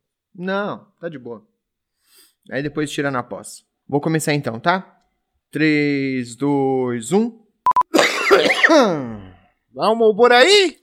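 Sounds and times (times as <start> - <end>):
speech: 0.4 - 1.5, 2.4 - 7.4, 8.7 - 10.8
quick electronic beeps: 7.7 - 7.9
loud drawn-out harsh cough: 7.9 - 9.1.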